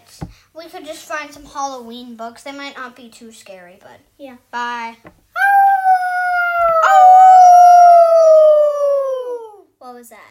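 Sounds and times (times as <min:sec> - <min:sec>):
speech: 0:00.2 - 0:05.2, 0:09.9 - 0:10.3
person imitating a wolf howl: 0:05.4 - 0:09.6.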